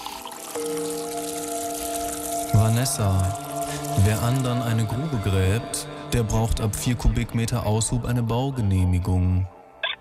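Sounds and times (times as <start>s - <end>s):
water pouring onto tea: 0.0s - 6.5s
speech: 0.6s - 0.9s, 2.6s - 3.4s, 4.0s - 9.6s.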